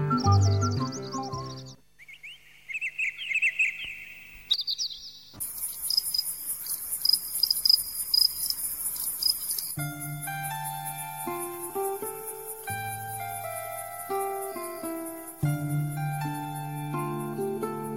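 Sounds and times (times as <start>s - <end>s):
crickets chirping: 0.1s - 17.9s
dense shrill insect trill: 5.3s - 17.9s.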